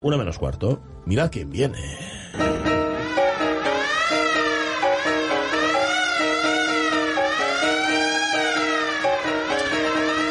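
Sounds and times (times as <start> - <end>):
speech: 0.0 - 2.8
siren wailing: 3.0 - 10.2.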